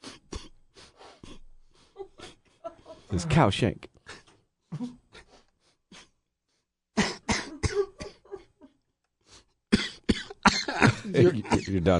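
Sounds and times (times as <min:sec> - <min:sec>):
speech: 0:03.1 - 0:03.9, 0:04.8 - 0:05.0, 0:11.1 - 0:11.9
person coughing in a drawn-out fit: 0:07.0 - 0:08.5, 0:09.7 - 0:11.9.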